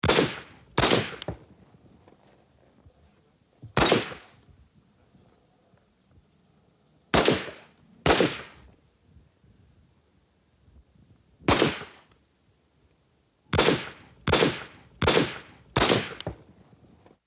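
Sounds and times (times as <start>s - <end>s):
gun from Japan: 0.0s - 1.4s, 3.8s - 4.4s, 7.1s - 8.6s, 11.5s - 12.1s, 13.5s - 16.5s.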